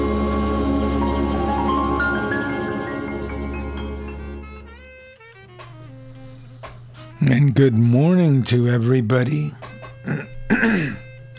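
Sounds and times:
low steady hum: 0.0 - 5.0
speech: 7.3 - 10.8
person clearing throat: 10.0 - 11.1.

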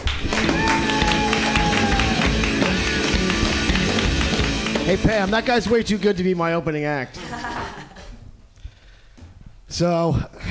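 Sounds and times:
audience applause at a comedy show: 0.0 - 5.6
speech: 4.9 - 7.5, 9.7 - 10.5
laughter: 7.2 - 8.2.

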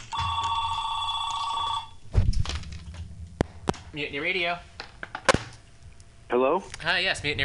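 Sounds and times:
telephone at a radio station ringing with an electronic trill: 0.1 - 2.0
speech: 3.9 - 4.7, 6.3 - 7.4.

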